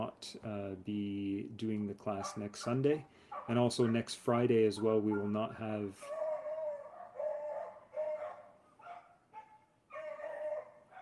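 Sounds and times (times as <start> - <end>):
speech: 0.0 - 6.2
small dog barking across the street: 2.2 - 3.5, 6.1 - 10.9.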